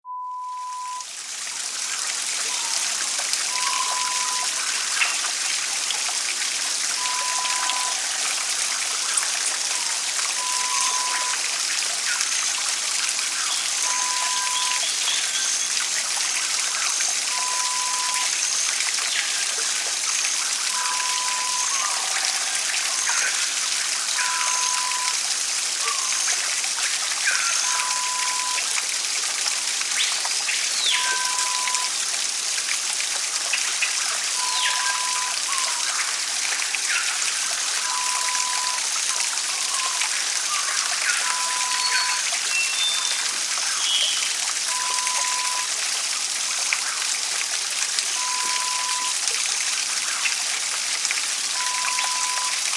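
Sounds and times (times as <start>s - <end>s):
rainforest ambience: 0.4s - 52.7s.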